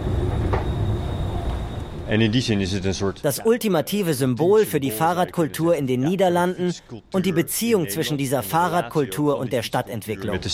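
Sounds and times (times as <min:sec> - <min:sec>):
train rolling by at a station: 0:00.0 - 0:03.2
low rumble of rail traffic at a station: 0:00.0 - 0:03.3
speech: 0:02.1 - 0:10.5.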